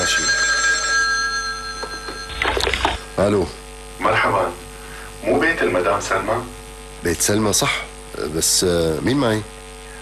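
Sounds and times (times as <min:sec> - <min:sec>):
telephone ringing with a steady electronic tone: 0:00.0 - 0:03.3
speech: 0:03.2 - 0:04.6, 0:05.2 - 0:09.6.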